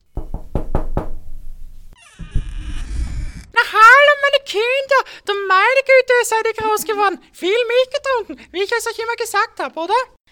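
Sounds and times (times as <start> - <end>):
firm knocks on a wooden door: 0.2 - 1.4, 2.2 - 2.8
low rumbling thud: 0.2 - 3.6
speech: 4.5 - 10.2.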